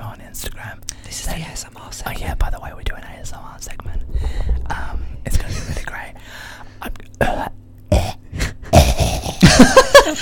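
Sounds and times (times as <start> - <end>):
speech: 0.4 - 7.6, 9.6 - 10.1
throat clearing: 7.2 - 9.5
phlegmy cough: 7.2 - 9.8.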